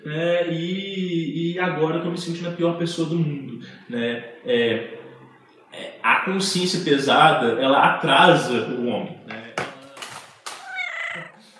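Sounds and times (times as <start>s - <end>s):
speech: 0.0s - 5.0s, 6.2s - 9.2s
cat meowing: 10.6s - 11.4s.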